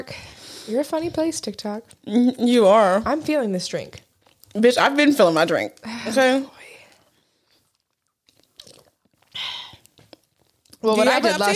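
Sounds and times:
speech: 0.0 - 6.6, 10.8 - 11.5
crunchy chewing of a cookie: 3.9 - 4.7, 6.8 - 10.8.

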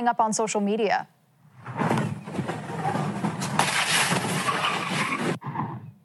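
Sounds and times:
speech: 0.0 - 1.9
car tyres skidding: 1.5 - 5.8
car crash clatter: 1.7 - 5.4.

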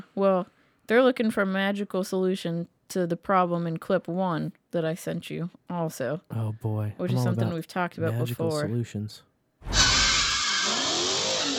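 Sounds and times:
speech: 0.2 - 9.8
car tires squealing during a street sideshow in the Kansas City metro: 9.7 - 11.5.

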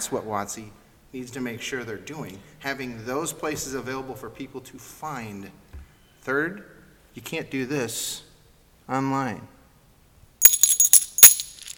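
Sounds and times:
speech: 0.1 - 5.6, 6.2 - 8.3, 8.9 - 9.6
metal coins clinking against a hard surface: 10.4 - 11.7.

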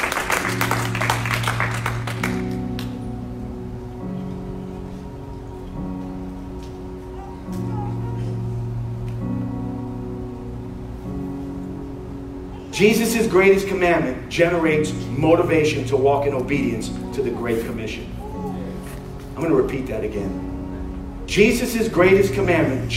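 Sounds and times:
audience applause: 0.0 - 3.0
sustained keyboard chords: 0.0 - 22.9
speech: 12.8 - 18.2, 19.4 - 20.5, 21.3 - 22.9.

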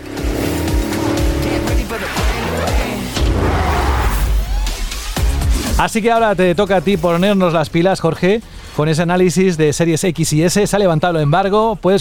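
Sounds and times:
screeching tires in console reveal trailer audio: 0.0 - 7.7
roaring race car engines in console reveal trailer audio: 0.0 - 8.8
speech: 5.8 - 11.9.

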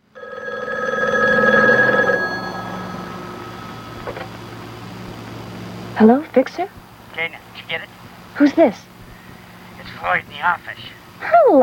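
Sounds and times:
telephone ringing with a bright electronic trill: 0.0 - 4.9
speech: 6.0 - 8.9, 10.0 - 11.6.

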